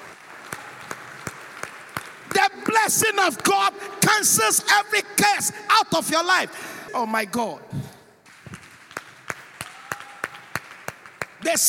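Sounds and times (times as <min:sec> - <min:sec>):
church service audience clapping: 0:00.0 - 0:04.0, 0:08.2 - 0:11.6
speech: 0:02.8 - 0:07.8, 0:11.4 - 0:11.6.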